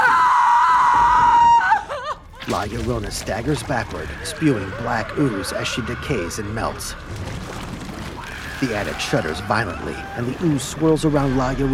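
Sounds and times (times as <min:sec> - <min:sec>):
woman screaming: 0:00.0 - 0:02.2
speech: 0:02.5 - 0:07.6, 0:08.6 - 0:11.7.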